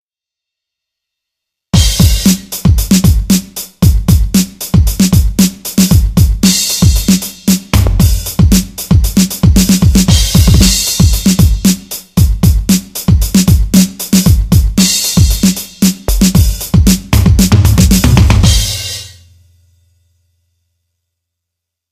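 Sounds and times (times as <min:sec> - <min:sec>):
dance drum beat: 0:01.8 - 0:19.1.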